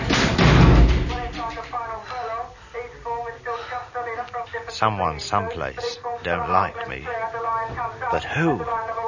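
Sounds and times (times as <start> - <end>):
heavy door kicked shut slamming: 0.0 - 1.6
speech: 4.8 - 8.9.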